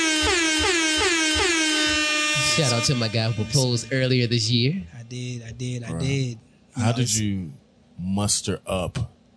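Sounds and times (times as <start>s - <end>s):
air horn sound effect honks: 0.0s - 4.6s
speech: 2.6s - 9.2s.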